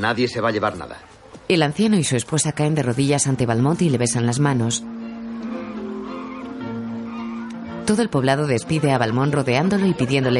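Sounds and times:
speech: 0.0 - 5.0, 7.9 - 10.3
flock of geese honking among chickens in a village: 4.8 - 10.3.

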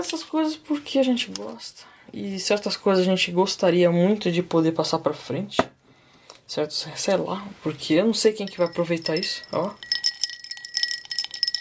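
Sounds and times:
speech: 0.0 - 5.8, 6.5 - 9.9
glasses clinking in a toast: 8.2 - 11.6.

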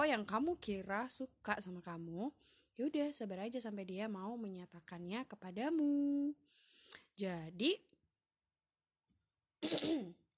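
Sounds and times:
speech: 0.0 - 7.9, 9.6 - 10.2
dry cough: 9.6 - 10.2.

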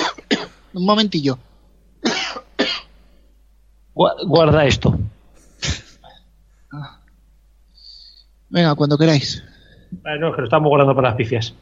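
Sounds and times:
person coughing: 0.0 - 0.6, 2.0 - 2.9, 5.5 - 6.2
speech: 0.7 - 1.5, 4.0 - 5.8, 6.7 - 7.0, 8.5 - 11.6.

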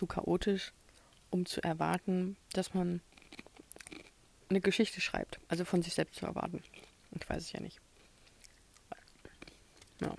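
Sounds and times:
speech: 0.0 - 3.1, 4.5 - 7.8
someone chewing a crunchy snack: 3.0 - 4.2, 6.5 - 7.4, 8.0 - 10.1.

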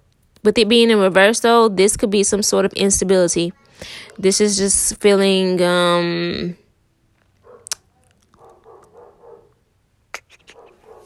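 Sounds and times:
speech: 0.4 - 6.6
neighbor's dogs barking muffled: 7.4 - 9.6, 10.4 - 11.0
neighbor's dogs giving sharp piercing yaps: 10.1 - 10.8.

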